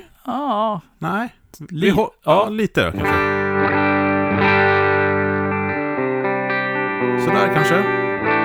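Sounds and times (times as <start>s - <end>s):
speech: 0.2s - 3.4s, 7.2s - 8.4s
German Telecaster electric guitar through amp with slightly boosted drive playing chords: 3.0s - 8.4s.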